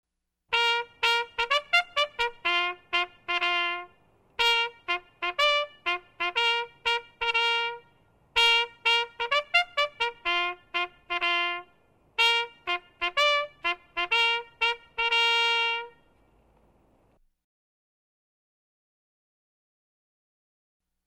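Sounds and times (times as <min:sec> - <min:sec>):
trumpet call: 0:00.5 - 0:16.2.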